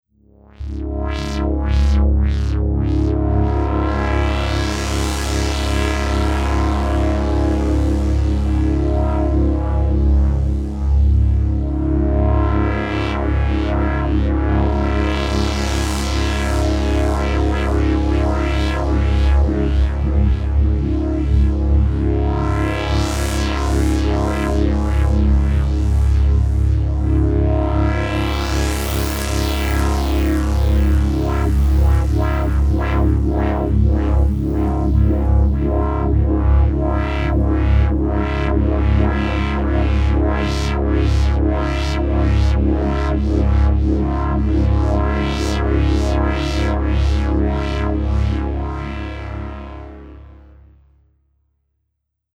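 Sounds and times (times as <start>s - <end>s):
synth drone in 5ths: 0.5s - 50.3s.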